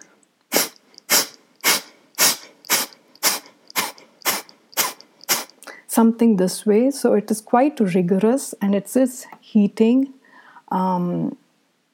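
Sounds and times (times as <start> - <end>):
forceful exhalations through the nose in Kapalbhati yoga breathing: 0.0 - 5.6
speech: 6.0 - 11.4.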